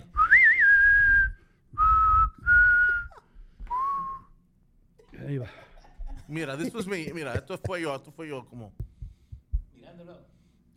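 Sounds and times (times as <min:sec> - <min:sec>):
person whistling short steady notes: 0:00.2 - 0:04.4
laughter: 0:05.3 - 0:08.2
speech: 0:06.3 - 0:08.9.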